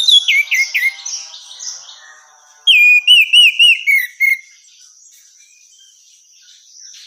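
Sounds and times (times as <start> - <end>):
female orange-headed thrush singing: 0.0 - 4.4.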